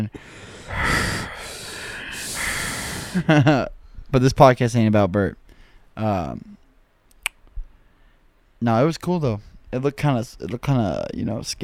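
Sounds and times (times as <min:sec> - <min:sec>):
speech: 0:00.0 - 0:00.9, 0:03.2 - 0:05.4, 0:06.0 - 0:06.6, 0:08.6 - 0:11.6
heavy ragged breathing after drinking too fast: 0:00.0 - 0:04.1.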